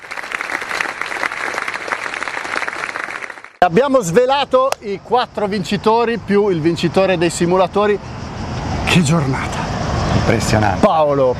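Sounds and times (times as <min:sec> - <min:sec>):
audience applause: 0:00.0 - 0:03.6
speech: 0:03.6 - 0:08.2, 0:08.9 - 0:09.6, 0:10.2 - 0:11.3.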